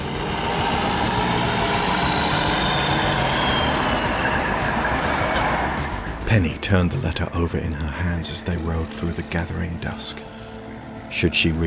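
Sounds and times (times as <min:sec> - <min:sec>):
car engine roaring as the vehicle pulls away: 0:00.0 - 0:06.5
speech: 0:06.3 - 0:10.4, 0:11.1 - 0:11.6.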